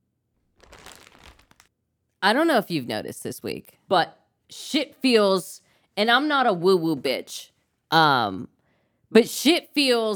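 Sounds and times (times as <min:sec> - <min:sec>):
paper towel being torn and crumpled: 0:00.6 - 0:01.7
speech: 0:02.2 - 0:08.5, 0:09.1 - 0:10.1.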